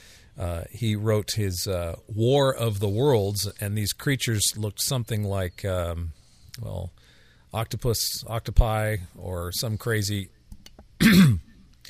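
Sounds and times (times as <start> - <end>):
speech: 0.4 - 10.4, 11.0 - 11.5
person clearing throat: 11.0 - 11.6.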